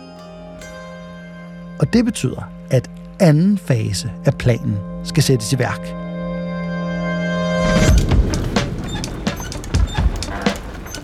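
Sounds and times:
brief sustained musical tone: 0:00.0 - 0:11.0
speech: 0:01.8 - 0:06.0
horse-drawn cart rumbling along: 0:07.8 - 0:11.0
horse hooves clip-clopping: 0:07.9 - 0:11.0.

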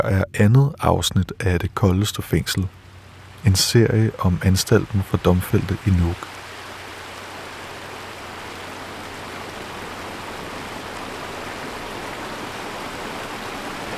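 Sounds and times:
speech: 0:00.0 - 0:02.8, 0:03.4 - 0:06.3
stream water rushing through prison yard: 0:01.4 - 0:13.9.

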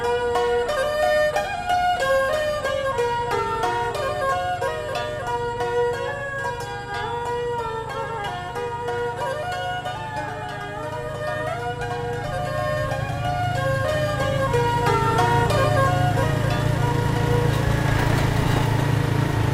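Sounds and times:
motorbike engines buzzing in street traffic: 0:00.0 - 0:19.5.

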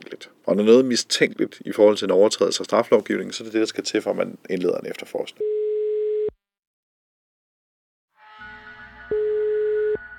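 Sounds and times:
speech: 0:00.2 - 0:05.6
telephone ringing tone on a call attempt: 0:09.1 - 0:10.1.

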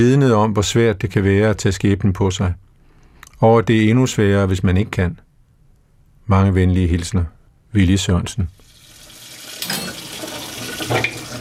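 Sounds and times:
speech: 0:00.0 - 0:02.7, 0:03.4 - 0:05.2, 0:06.3 - 0:08.6
running tap water while dishes are washed by hand at a sink: 0:08.6 - 0:11.3
dishes clattering at a sink: 0:09.6 - 0:11.3.

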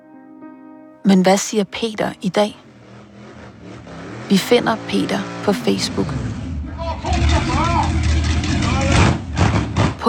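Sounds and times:
speech: 0:01.0 - 0:02.7, 0:04.3 - 0:06.3
indistinct voices: 0:01.1 - 0:02.6, 0:04.3 - 0:09.2
motorcycle engine revving during a wheelspin: 0:02.6 - 0:10.0.

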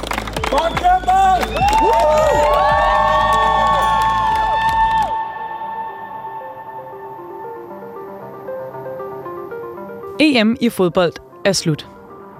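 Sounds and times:
clapping: 0:00.0 - 0:05.2
crowd of fans cheering and shouting at an airport welcome: 0:00.0 - 0:07.4
speech: 0:10.3 - 0:11.9.

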